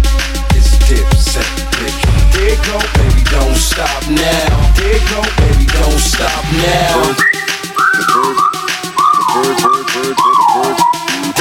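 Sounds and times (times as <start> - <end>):
rhythmic backing beat in a music mashup: 0.0 - 11.3
whistle from a whistling novelty machine: 7.2 - 11.3.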